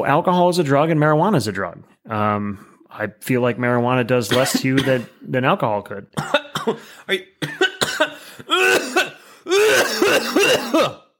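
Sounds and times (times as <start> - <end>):
speech: 0.0 - 11.0
person coughing: 4.3 - 5.2, 6.2 - 11.1
throat clearing: 4.3 - 5.2, 6.2 - 11.1.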